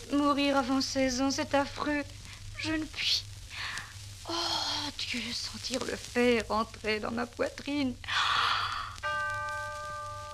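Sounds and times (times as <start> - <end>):
speech: 0.1 - 3.3, 4.3 - 8.2
neighbouring clock striking the hour: 9.0 - 10.3.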